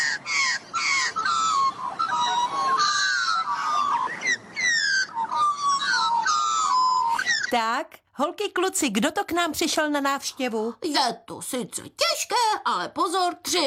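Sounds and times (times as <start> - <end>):
person imitating a kangaroo's call with harsh raspy squawks: 0.0 - 7.7
speech: 7.5 - 13.6.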